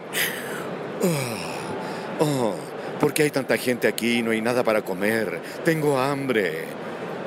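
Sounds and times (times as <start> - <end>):
person yawning with a low voiced groan: 0.2 - 1.8
speech: 1.0 - 1.3, 2.2 - 6.9.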